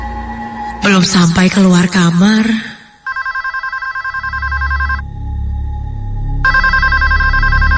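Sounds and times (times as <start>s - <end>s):
speech: 0.8s - 2.7s
telephone ringing with electronic warble: 3.0s - 5.0s, 6.4s - 7.7s.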